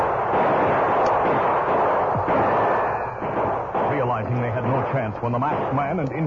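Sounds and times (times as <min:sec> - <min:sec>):
dense barrage of overlapping gunshots from several guns: 0:00.0 - 0:06.2
speech: 0:04.9 - 0:06.2.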